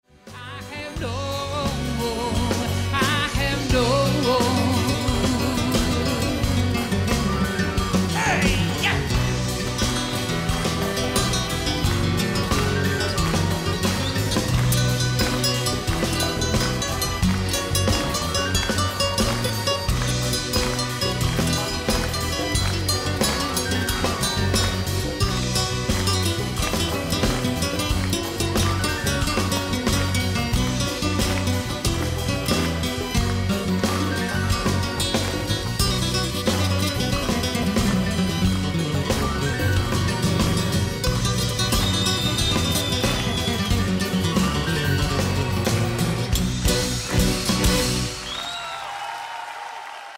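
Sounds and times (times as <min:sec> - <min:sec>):
Latino live solo: 0:00.4 - 0:48.7.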